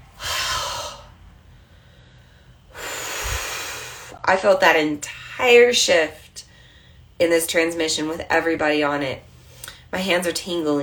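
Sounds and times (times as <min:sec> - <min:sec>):
deep breaths during a relaxation breathing exercise: 0:00.0 - 0:04.2, 0:06.4 - 0:07.2
speech: 0:04.3 - 0:06.2, 0:07.2 - 0:09.3, 0:09.9 - 0:10.8.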